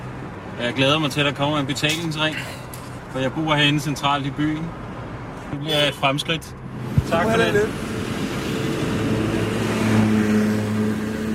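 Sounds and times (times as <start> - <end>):
constant wash of surrounding street traffic: 0.0 - 11.3
speech: 0.6 - 4.8, 5.5 - 7.9
car engine revving and accelerating: 6.7 - 11.3.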